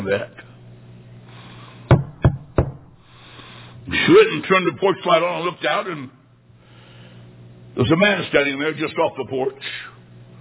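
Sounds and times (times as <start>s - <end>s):
speech: 0.0s - 0.4s, 3.9s - 6.2s, 7.8s - 9.7s
faint hum: 0.0s - 10.3s
firm knocking on a door: 1.9s - 2.9s.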